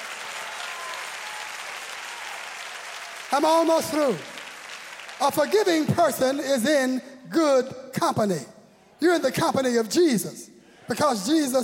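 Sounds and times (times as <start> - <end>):
audience clapping hands in praise: 0.0 - 6.6
speech: 3.3 - 4.3, 5.2 - 11.6.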